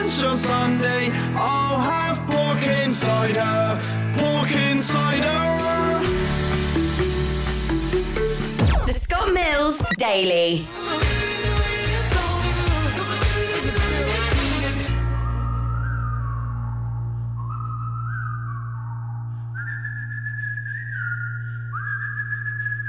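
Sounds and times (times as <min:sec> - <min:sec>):
speech: 0:00.1 - 0:08.4, 0:09.0 - 0:11.7
dense burst of music: 0:04.5 - 0:09.4, 0:10.7 - 0:18.6
whistled melody with several overlapping layers: 0:04.9 - 0:08.6, 0:14.9 - 0:22.8.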